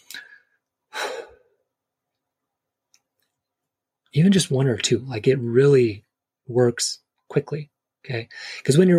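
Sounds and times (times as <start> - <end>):
slow deep breath: 0.0 - 1.6
speech: 4.1 - 8.9.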